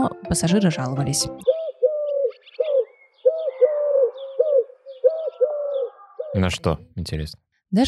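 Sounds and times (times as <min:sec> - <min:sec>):
speech: 0:00.3 - 0:01.5, 0:06.4 - 0:07.8
pigeons cooing: 0:01.4 - 0:06.6
faint higher chirps from other birds: 0:01.4 - 0:06.8.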